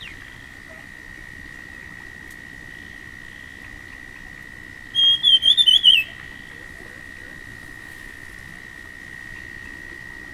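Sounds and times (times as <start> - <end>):
dusky fulvetta whistling: 4.9 - 6.2.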